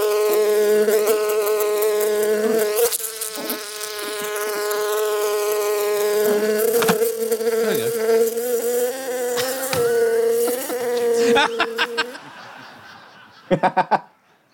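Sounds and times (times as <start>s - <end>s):
bees buzzing: 0.0s - 12.6s
sharp knocks: 6.8s - 7.0s, 9.4s - 10.0s
laughter: 10.3s - 14.5s.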